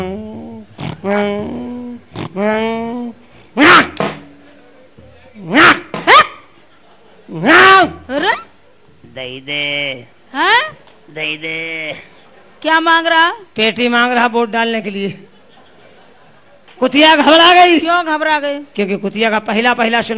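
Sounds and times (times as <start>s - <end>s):
man's voice imitating dog barks and yelps: 0.0s - 4.2s, 5.4s - 6.5s, 7.3s - 8.5s
speech: 1.0s - 1.6s, 2.4s - 3.2s, 9.2s - 15.3s, 16.8s - 20.1s
laughter: 6.4s - 7.6s, 15.0s - 16.8s.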